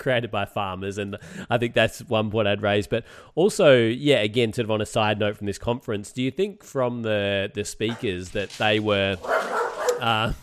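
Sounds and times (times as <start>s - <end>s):
speech: 0.0s - 10.4s
dog barking: 7.9s - 8.1s, 9.2s - 10.2s.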